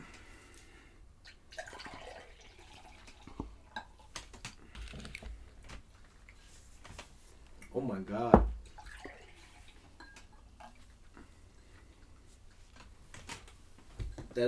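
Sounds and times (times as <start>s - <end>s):
beer poured into cups: 1.2s - 5.4s, 8.2s - 12.6s
speech: 7.8s - 8.5s.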